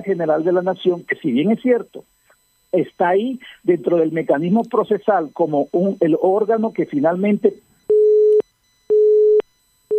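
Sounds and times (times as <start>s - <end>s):
telephone busy signal after a dropped call: 0.0s - 1.5s, 4.5s - 7.0s, 7.7s - 9.9s
speech: 0.0s - 2.1s, 2.7s - 7.6s.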